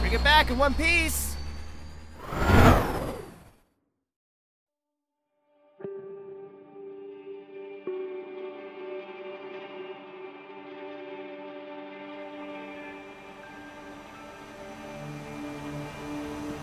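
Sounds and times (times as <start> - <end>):
speech: 0.1 - 1.3
hover vehicle lifting off with a whoosh: 2.1 - 3.6.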